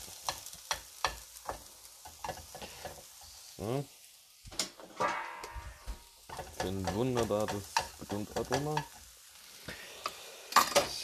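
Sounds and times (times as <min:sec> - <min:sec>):
onions and garlic sizzling in a hot pan: 0:00.0 - 0:11.0
stirring scraping strokes in a pan: 0:00.1 - 0:03.6, 0:05.0 - 0:11.0
speech: 0:03.6 - 0:04.0, 0:05.0 - 0:05.2, 0:06.6 - 0:09.0.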